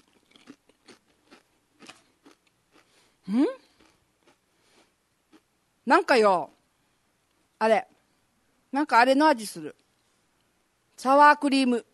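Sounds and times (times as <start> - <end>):
ranch-flavoured Pringles potato chips being bitten and chewed: 0.0 - 3.0
speech: 3.3 - 3.6, 5.9 - 6.6, 7.6 - 7.9, 8.7 - 9.8, 11.0 - 11.9.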